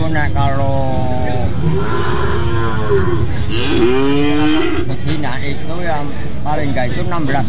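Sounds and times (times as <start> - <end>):
speech: 0.1 - 1.0, 5.5 - 7.4
cattle mooing at a sacrificial cattle market: 1.5 - 4.9.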